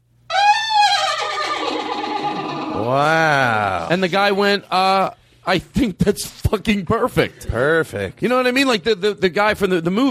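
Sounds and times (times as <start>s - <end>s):
person imitating a horse neigh: 0.3s - 4.0s
speech: 2.9s - 3.2s, 3.9s - 10.0s.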